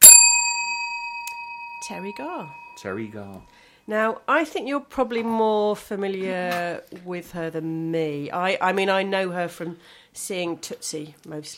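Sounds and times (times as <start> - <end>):
bright bell ding used as a sound effect: 0.0 - 3.4
speech: 1.8 - 11.5.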